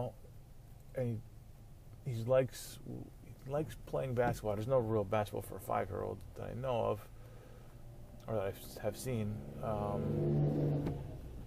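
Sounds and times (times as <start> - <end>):
speech: 0.0 - 0.2, 1.0 - 1.3, 2.0 - 7.2, 8.3 - 11.1
car engine revving as the vehicle passes by: 8.2 - 11.4.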